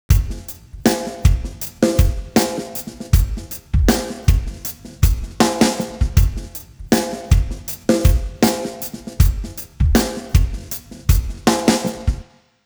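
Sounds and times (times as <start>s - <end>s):
time-stretched drums: 0.0s - 12.3s.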